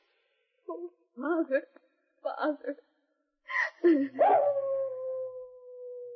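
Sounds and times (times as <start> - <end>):
speech: 1.3 - 1.8
wolf howling from the top of a canyon: 4.2 - 6.1.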